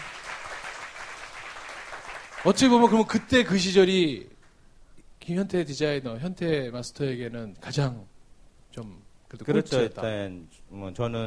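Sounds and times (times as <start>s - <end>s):
audience applauding: 0.0s - 3.1s
speech: 2.4s - 4.3s, 5.3s - 8.1s, 8.7s - 11.2s.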